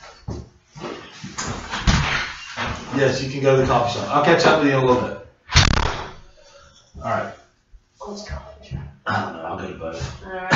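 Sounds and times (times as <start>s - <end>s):
door being pushed shut and locked: 1.4s - 2.9s
speech: 3.0s - 5.2s, 7.0s - 7.4s.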